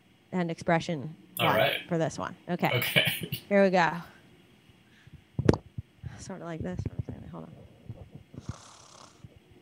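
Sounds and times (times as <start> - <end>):
speech: 0.3 - 4.1, 6.2 - 7.6
person imitating snoring: 8.4 - 9.2.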